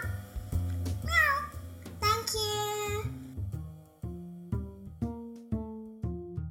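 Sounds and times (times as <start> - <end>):
plucky rhythmic bouncing musical backing: 0.0 - 6.4
child imitating a cat meowing: 1.0 - 1.6.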